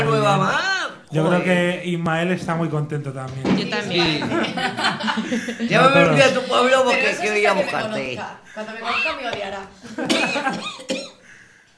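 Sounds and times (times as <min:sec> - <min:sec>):
speech: 0:00.2 - 0:11.1
laughter: 0:04.0 - 0:08.2, 0:09.8 - 0:10.8
harsh rough coughs: 0:10.0 - 0:11.3.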